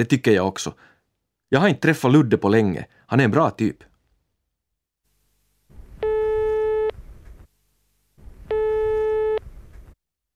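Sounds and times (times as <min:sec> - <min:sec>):
speech: 0:00.0 - 0:00.9, 0:01.5 - 0:03.9
telephone ringback tone through a phone line: 0:06.0 - 0:07.0, 0:08.5 - 0:09.5.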